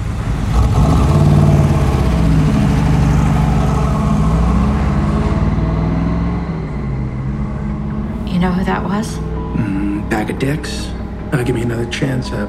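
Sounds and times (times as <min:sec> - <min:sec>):
1967 Corvette L88 V8 engine revving: 0:00.0 - 0:12.4
speech: 0:08.4 - 0:09.2, 0:10.1 - 0:12.4.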